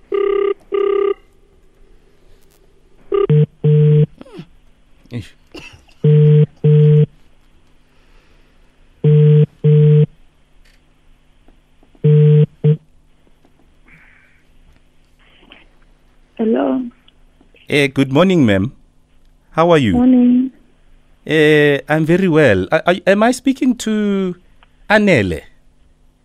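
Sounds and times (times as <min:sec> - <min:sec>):
telephone ringback tone on an outgoing call: 0:00.1 - 0:01.2, 0:03.1 - 0:04.1, 0:06.1 - 0:07.1, 0:09.0 - 0:10.1, 0:12.1 - 0:12.8
speech: 0:05.1 - 0:05.4, 0:17.7 - 0:18.8, 0:19.6 - 0:20.4, 0:21.3 - 0:25.5.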